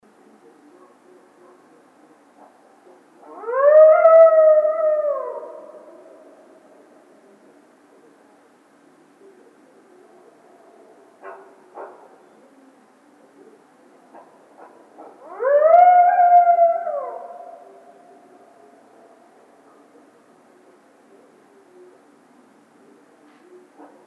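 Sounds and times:
coyote howling: 3.2 - 7.5, 14.6 - 20.6.

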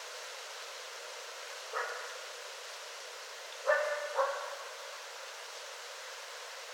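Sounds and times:
quiet hiss: 0.0 - 6.7
coyote yelps and barks: 3.6 - 4.6.

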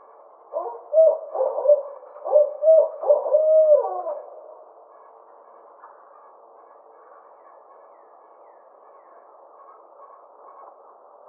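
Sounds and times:
Barred owl hooting: 0.5 - 5.1.

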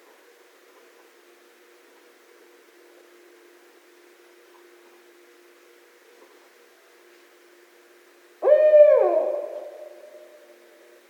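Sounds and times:
barred owl hooting: 8.4 - 10.6.

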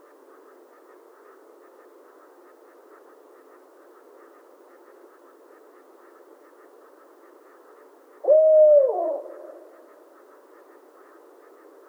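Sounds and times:
barred owl hooting: 8.2 - 10.3.

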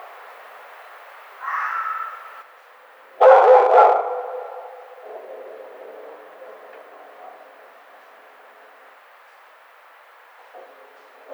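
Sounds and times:
red fox giving hoarse raspy barks: 1.4 - 2.4, 3.2 - 7.9, 10.5 - 11.3.

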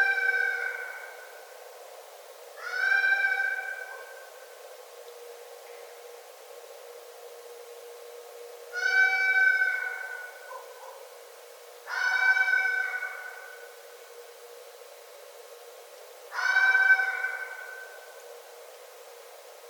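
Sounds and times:
red fox calling: 0.0 - 1.2, 2.6 - 4.2, 8.8 - 11.0, 11.9 - 13.7, 16.3 - 18.0.

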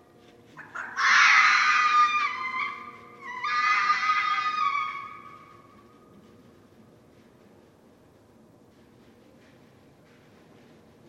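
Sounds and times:
red fox screaming at night: 0.6 - 5.7.

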